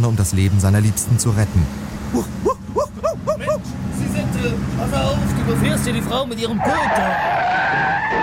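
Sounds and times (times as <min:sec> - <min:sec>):
speech: 0:00.0 - 0:03.8, 0:04.4 - 0:08.2
racing car tires skidding and screeching: 0:01.7 - 0:08.2.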